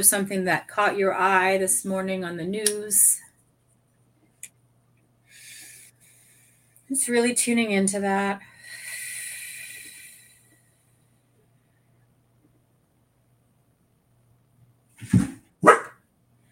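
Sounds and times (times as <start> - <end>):
speech: 0.0 - 3.2, 6.9 - 8.5
dog barking inside a house: 15.6 - 16.0.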